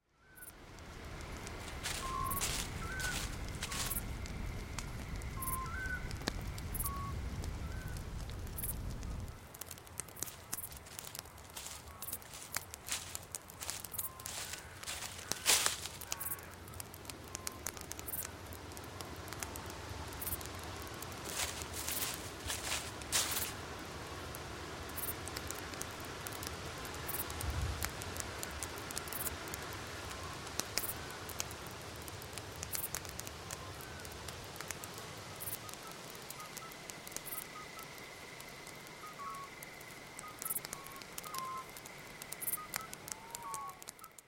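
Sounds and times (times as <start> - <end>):
night atmosphere: 0.0 - 44.2
fire: 0.2 - 44.2
footsteps: 1.6 - 4.0, 10.2 - 16.1, 21.2 - 23.6.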